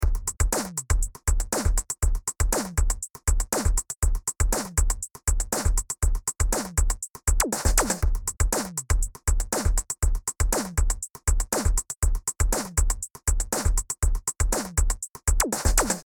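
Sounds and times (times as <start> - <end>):
drum: 0.0 - 16.0.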